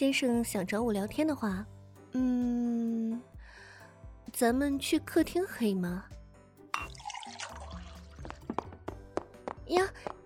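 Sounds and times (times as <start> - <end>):
speech: 0.0 - 3.4, 4.3 - 6.2, 9.7 - 10.2
water being poured in a faint steady trickle: 6.8 - 8.3.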